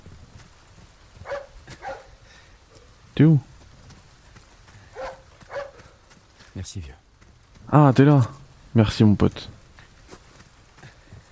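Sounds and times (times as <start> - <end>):
dog barking: 1.2 - 2.2, 4.9 - 6.0
speech: 3.2 - 3.5, 6.7 - 7.0, 7.7 - 9.6.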